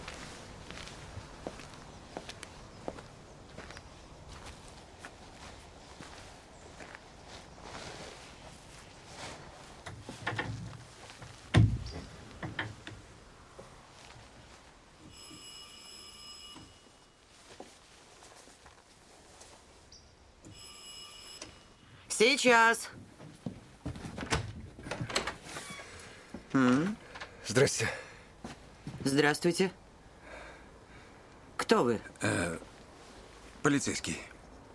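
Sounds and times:
faint footsteps walking from a van to a house door: 0:00.0 - 0:15.1, 0:17.1 - 0:19.9, 0:22.9 - 0:24.7, 0:28.4 - 0:29.2
speech: 0:22.2 - 0:23.0, 0:27.6 - 0:28.0, 0:29.0 - 0:29.8, 0:31.7 - 0:32.6, 0:33.6 - 0:34.3.

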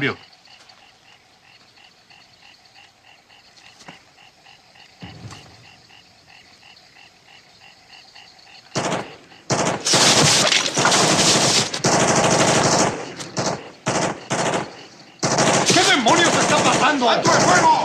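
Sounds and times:
automatic gunfire in a war film battle scene: 0:08.7 - 0:17.8.

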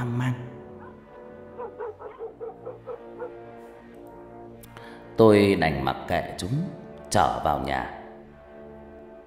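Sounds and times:
dogs barking at night: 0:00.6 - 0:03.8
speech: 0:05.2 - 0:08.0.

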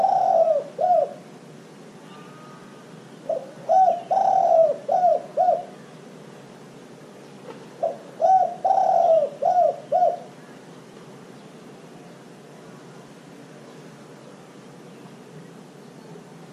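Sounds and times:
dove song of soft rounded coos: 0:00.0 - 0:01.3, 0:03.2 - 0:05.8, 0:07.8 - 0:10.5.

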